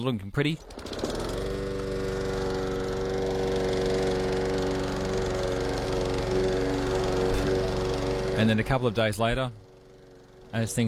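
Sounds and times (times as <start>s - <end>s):
speech: 0.0s - 1.1s, 8.4s - 9.6s, 10.5s - 10.8s
lawn mower engine cutting grass: 0.6s - 10.8s.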